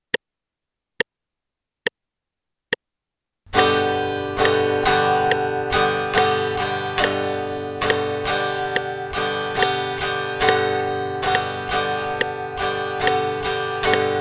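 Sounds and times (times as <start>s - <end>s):
guitar strumming G chord in eighth notes: 3.5s - 14.1s.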